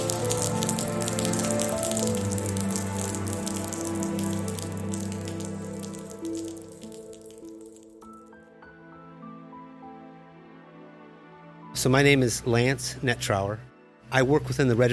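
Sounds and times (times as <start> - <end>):
rain falling on hard surfaces: 0.0 - 8.2
speech: 11.8 - 14.9.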